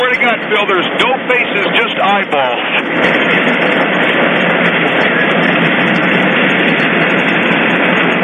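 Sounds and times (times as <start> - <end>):
amusement park ride running down through a small chicane toward a stop: 0.0 - 8.2
speech: 0.4 - 3.6.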